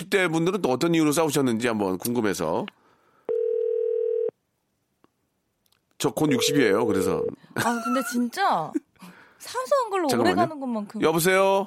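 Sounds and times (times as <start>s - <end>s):
speech: 0.0s - 2.8s, 6.0s - 11.6s
telephone tone as a call is placed: 3.3s - 4.3s, 6.3s - 7.4s.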